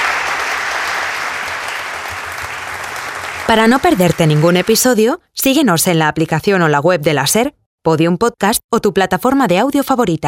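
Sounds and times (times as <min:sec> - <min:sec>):
loud applause from a large audience: 0:00.0 - 0:04.9
speech: 0:03.5 - 0:10.2.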